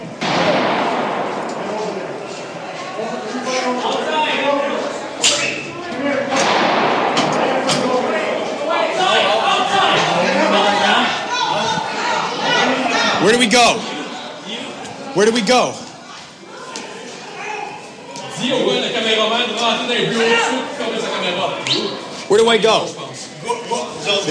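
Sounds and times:
agitated crowd voices and movement: 0:00.0 - 0:24.3
gunshots echoing in stone building: 0:00.2 - 0:03.0, 0:06.3 - 0:10.0
speech: 0:13.5 - 0:13.9, 0:15.2 - 0:15.8, 0:19.8 - 0:20.6, 0:22.3 - 0:22.9.

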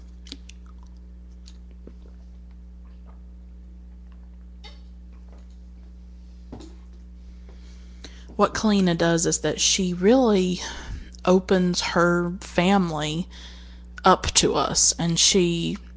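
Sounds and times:
soft wet mouth clicks and swallows: 0:00.0 - 0:03.3
person sipping water: 0:00.0 - 0:04.4
steady low electrical hum: 0:00.0 - 0:15.9
speech: 0:08.4 - 0:15.9.

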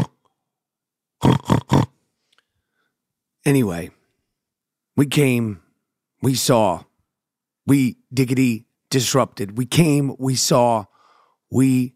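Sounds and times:
person imitating pig oinking grunts: 0:00.0 - 0:00.3, 0:01.2 - 0:02.0
snort: 0:01.2 - 0:02.0
speech: 0:03.4 - 0:04.0, 0:05.0 - 0:05.6, 0:06.2 - 0:06.9, 0:07.7 - 0:10.9, 0:11.5 - 0:11.9.

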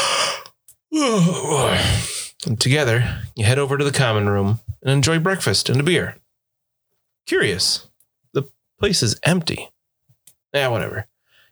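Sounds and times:
person making a voiced drawn-out groan: 0:00.0 - 0:02.3
person yawning: 0:00.0 - 0:02.3
speech: 0:01.0 - 0:06.2, 0:07.2 - 0:09.8, 0:10.5 - 0:11.1.

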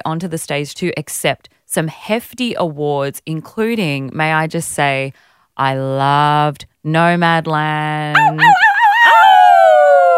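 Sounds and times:
speech: 0:00.0 - 0:08.7
woman howling like a wolf: 0:08.2 - 0:10.1.

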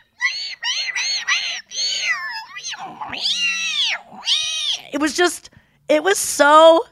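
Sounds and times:
person's voice imitating whale calls through an underwater microphone: 0:00.0 - 0:05.0
speech: 0:04.9 - 0:06.9.

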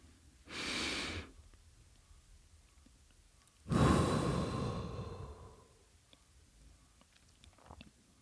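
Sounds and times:
slow deep breathing: 0:03.7 - 0:05.8.

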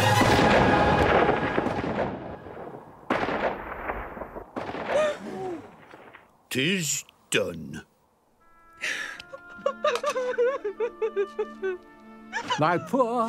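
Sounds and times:
gunshots echoing through a small town: 0:00.2 - 0:05.2
speech: 0:06.5 - 0:07.9, 0:08.8 - 0:09.1, 0:10.4 - 0:13.2
laughter: 0:09.1 - 0:13.2.

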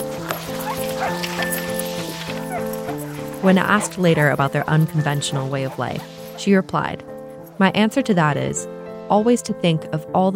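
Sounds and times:
sled dogs whining: 0:00.0 - 0:06.5
pack of sled dogs barking and yipping excitedly: 0:00.0 - 0:07.5
speech: 0:03.4 - 0:10.3.

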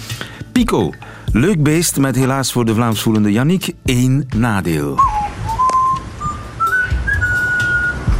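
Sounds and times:
speech: 0:00.6 - 0:05.2
pet parrot whistling a tune: 0:05.0 - 0:08.1.

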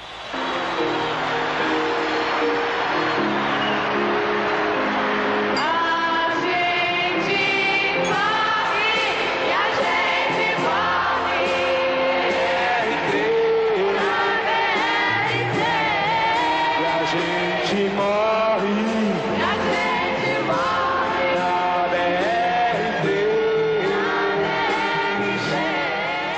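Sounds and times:
faint festival crowd: 0:00.0 - 0:26.3
strong lead voice carrying the melody: 0:01.6 - 0:26.3
live soul song with full band performed on stage: 0:05.5 - 0:26.3.

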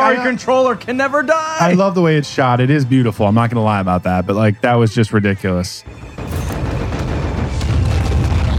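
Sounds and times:
speech: 0:00.1 - 0:06.4
bombs exploding on a ship in a film scene: 0:06.2 - 0:08.5.

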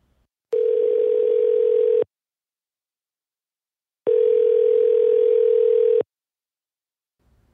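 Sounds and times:
long steady telephone tones before a voicemail: 0:00.6 - 0:02.1, 0:04.1 - 0:06.1.

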